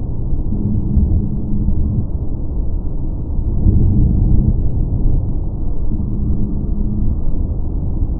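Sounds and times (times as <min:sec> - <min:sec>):
road noise with ANC switched on and off: 0:00.1 - 0:08.0.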